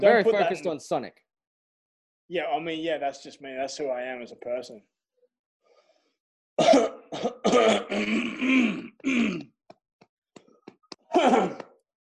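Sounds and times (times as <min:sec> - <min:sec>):
speech: 0:00.0 - 0:01.3, 0:02.3 - 0:05.0, 0:06.6 - 0:09.5, 0:11.1 - 0:11.6
person in a heavy harsh coughing fit: 0:06.6 - 0:09.5, 0:11.1 - 0:11.7.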